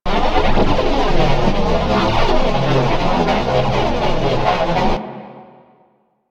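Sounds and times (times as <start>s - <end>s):
space pod vehicle idling: 0.1s - 5.4s.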